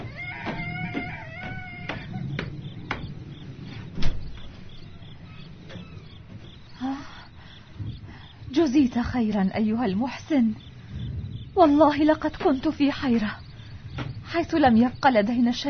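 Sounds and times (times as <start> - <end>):
house door creaking open with hinge squeal: 0.0 - 6.8
wooden clunks and thuds: 0.0 - 6.8, 7.7 - 8.3, 12.0 - 15.0
low rumbling background: 0.0 - 15.6
speech: 8.7 - 10.7, 11.6 - 13.4, 14.3 - 15.6.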